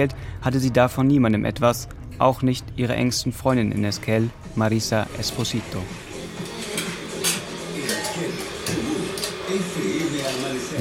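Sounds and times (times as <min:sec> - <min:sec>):
speech: 0:00.0 - 0:06.1
dishes and cups clinking as a woman makes coffee in a kitchen: 0:06.4 - 0:10.7
low voice murmuring: 0:07.7 - 0:10.7.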